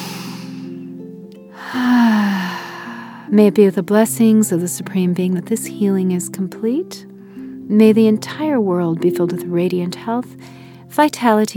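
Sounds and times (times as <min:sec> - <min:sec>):
slow deep breath in and out: 0:00.0 - 0:00.8, 0:01.5 - 0:03.3, 0:10.4 - 0:10.8
soft sustained musical drone: 0:00.0 - 0:11.5
speech: 0:03.3 - 0:07.1, 0:07.7 - 0:11.5.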